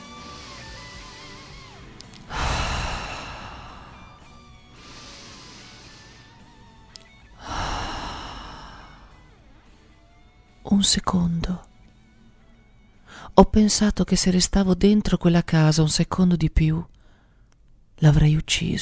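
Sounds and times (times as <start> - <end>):
woman breathing in deeply: 0.0 - 6.7, 7.3 - 9.7, 13.0 - 13.4, 17.0 - 17.6
speech: 10.8 - 11.7, 13.4 - 17.0, 18.0 - 18.8.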